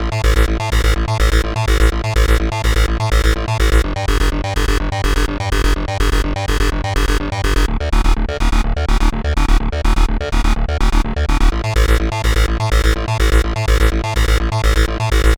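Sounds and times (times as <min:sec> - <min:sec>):
big bad bass music: 0:00.0 - 0:15.3.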